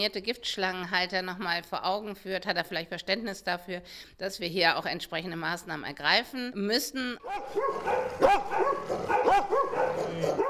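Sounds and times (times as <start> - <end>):
speech: 0.0 - 10.4
dogs barking and yelping in animal shelter: 7.2 - 10.4.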